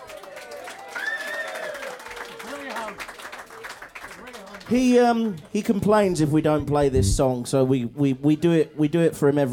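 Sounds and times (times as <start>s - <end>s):
large audience applause at live concert: 0.0s - 5.5s
audience whoops and shouted voices: 0.9s - 2.0s
speech: 4.7s - 9.5s.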